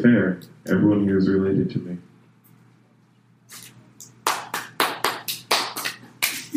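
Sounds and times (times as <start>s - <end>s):
speech: 0.0s - 2.1s
small group clapping: 4.0s - 6.5s.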